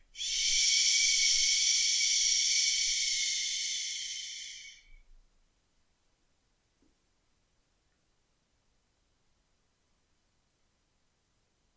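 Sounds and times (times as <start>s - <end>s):
long noisy exhale during a yoga stretch lying on the back: 0.2s - 4.9s.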